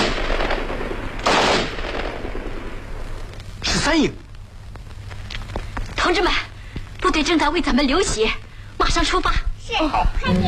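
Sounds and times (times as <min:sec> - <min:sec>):
dense burst of gunfire from behind a mountain ridge: 0:00.0 - 0:03.0
speech: 0:03.9 - 0:04.2, 0:06.1 - 0:06.4, 0:07.2 - 0:10.4.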